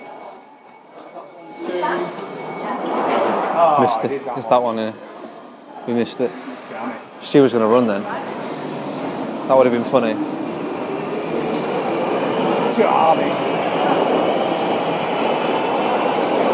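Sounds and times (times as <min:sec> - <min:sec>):
thin high train wheel squeal: 0:00.0 - 0:03.8, 0:07.9 - 0:16.4
speech: 0:03.6 - 0:05.1, 0:05.8 - 0:08.5, 0:09.5 - 0:10.4, 0:12.8 - 0:14.3.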